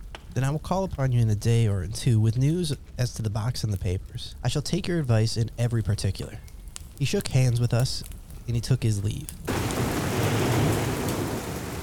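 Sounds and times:
speech: 0.4s - 9.7s
heavy rain splashing against windows in a storm: 7.0s - 11.8s.

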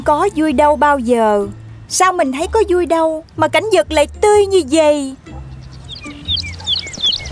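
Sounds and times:
speech: 0.0s - 5.2s
bird singing loudly: 5.4s - 7.3s.

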